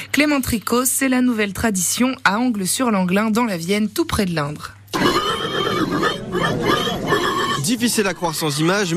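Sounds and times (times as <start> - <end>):
speech: 0.2 - 5.1, 7.7 - 8.9
man imitating a loud shrill pig squeal in a pig-squeal contest: 4.9 - 8.7.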